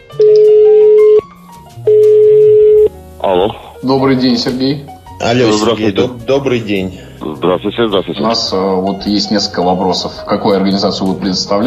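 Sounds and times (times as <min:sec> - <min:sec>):
telephone tone while placing a call to Kyrgyzstan: 0:00.2 - 0:01.2, 0:01.9 - 0:02.9
speech: 0:03.3 - 0:11.6.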